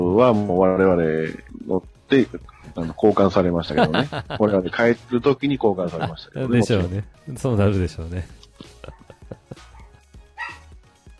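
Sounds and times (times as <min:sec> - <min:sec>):
speech: 0:00.2 - 0:09.1
laughter: 0:02.6 - 0:07.0, 0:07.6 - 0:09.9
dog barking: 0:08.8 - 0:10.7
dog crying: 0:08.9 - 0:10.6
dog yipping: 0:09.7 - 0:10.7.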